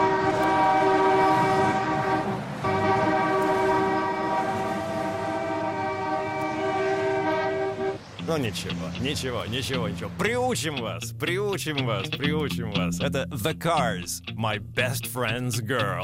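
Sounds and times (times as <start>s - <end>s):
car horns blaring in a long steady chord: 0.0s - 8.3s
speech: 8.3s - 16.0s.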